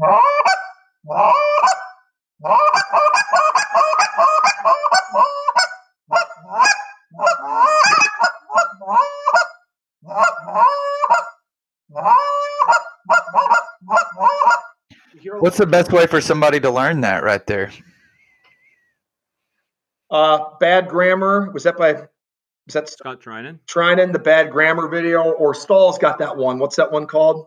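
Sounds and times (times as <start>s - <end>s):
speech: 0.0s - 0.3s, 15.4s - 17.9s, 20.2s - 22.1s, 22.7s - 27.4s
goose call blown in moan and cluck notes for hunting Canada geese: 0.0s - 15.8s.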